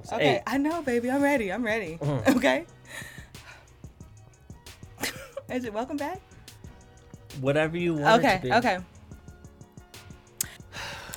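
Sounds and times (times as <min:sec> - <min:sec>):
speech: 0:00.0 - 0:03.1, 0:05.0 - 0:06.3, 0:07.3 - 0:08.9
heavy breathing right on the microphone: 0:10.5 - 0:11.1.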